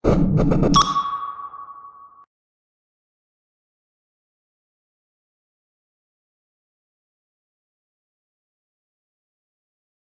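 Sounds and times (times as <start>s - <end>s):
advanced beacon ping: 0.7s - 2.3s.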